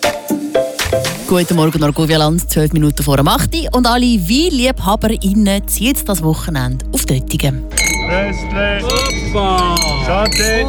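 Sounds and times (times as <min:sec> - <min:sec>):
speech: 0:01.3 - 0:10.6
glasses clinking in a toast at a winegrowers' festival: 0:07.7 - 0:08.2, 0:08.8 - 0:10.6.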